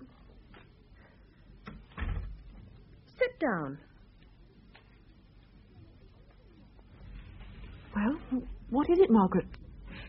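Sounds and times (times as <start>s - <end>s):
door pushed shut with creaks and a low thud: 1.6s - 2.5s
speech: 3.3s - 3.9s, 8.3s - 9.6s.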